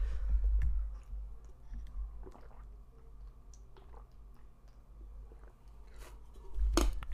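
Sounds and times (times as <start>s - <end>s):
person drinking water with gulps and swallowing: 0.6s - 7.1s.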